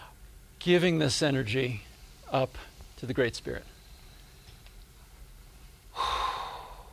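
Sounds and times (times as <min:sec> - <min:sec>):
speech: 0:00.6 - 0:03.7
slow exhaled breath during a guided breathing exercise: 0:05.9 - 0:06.9.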